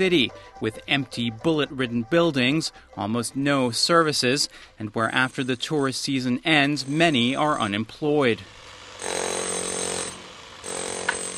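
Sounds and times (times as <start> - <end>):
speech: 0.0 - 9.3
power drill whining at a building under reconstruction in Suhumi: 8.3 - 11.3.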